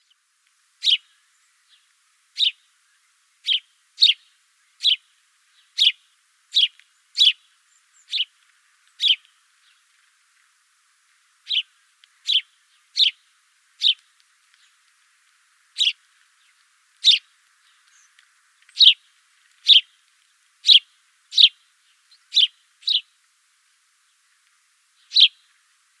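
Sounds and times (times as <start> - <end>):
house sparrow chirping and singing: 0.8 - 1.8, 2.4 - 2.6, 3.4 - 5.0, 5.6 - 6.0, 6.6 - 8.3, 9.0 - 9.3, 11.5 - 13.2, 13.8 - 14.0, 15.8 - 16.0, 17.0 - 18.1, 18.7 - 19.0, 19.7 - 19.9, 20.6 - 23.1, 25.0 - 25.4.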